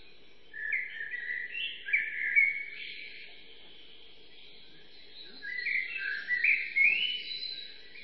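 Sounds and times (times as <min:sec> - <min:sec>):
birdsong chorus among beech trees in early morning woodland at dawn: 0:00.0 - 0:08.0.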